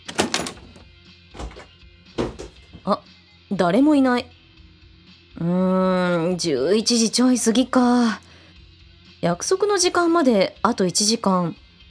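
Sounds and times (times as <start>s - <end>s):
heavy soundproof studio door latch and handle clunk: 0.0s - 0.8s, 1.4s - 2.6s
solid knock: 1.4s - 2.8s
thud and shuffle: 1.4s - 2.9s
speech: 2.8s - 4.4s, 5.4s - 8.2s, 9.2s - 11.6s.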